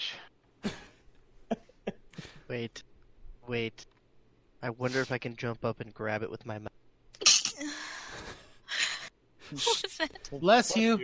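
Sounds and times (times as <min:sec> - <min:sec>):
speech: 0:02.5 - 0:02.9, 0:03.5 - 0:03.9, 0:04.6 - 0:06.8, 0:09.5 - 0:11.0
person sneezing: 0:07.2 - 0:07.7.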